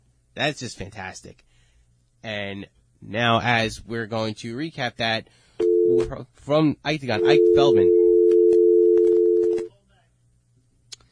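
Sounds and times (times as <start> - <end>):
speech: 0.4 - 1.5, 2.2 - 8.0
telephone dial tone: 7.2 - 9.7.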